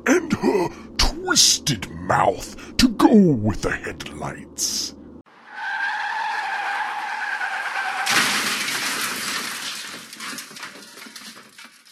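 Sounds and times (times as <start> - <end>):
speech: 0.0 - 5.0
car tires screeching in a skid: 5.3 - 8.5
car crunching crash rolling over: 5.9 - 11.8.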